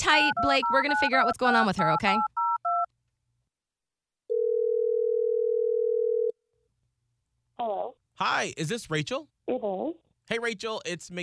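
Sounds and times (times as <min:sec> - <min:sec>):
telephone keypad beep: 0:00.0 - 0:01.4
speech: 0:00.0 - 0:02.4, 0:07.6 - 0:11.2
steady loud telephone tone while placing a call: 0:04.3 - 0:06.3.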